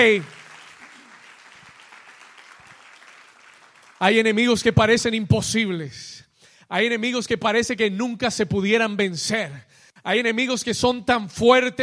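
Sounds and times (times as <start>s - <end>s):
speech: 0.0s - 0.4s, 4.0s - 11.8s
large crowd applauding: 0.0s - 4.6s.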